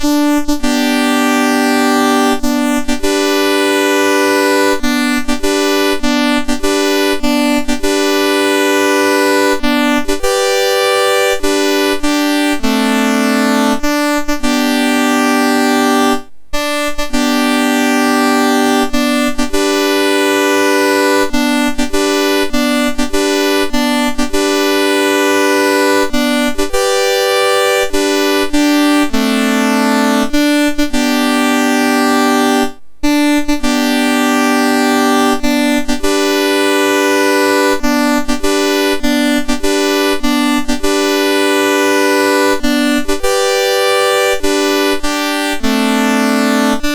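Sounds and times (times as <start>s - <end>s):
bugle call melody on a MOS6581R4 sound chip: 0.0s - 46.9s.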